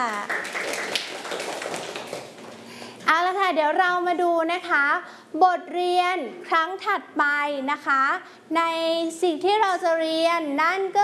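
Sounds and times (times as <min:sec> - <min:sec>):
group of children applauding: 0:00.0 - 0:02.6
speech: 0:03.5 - 0:11.0.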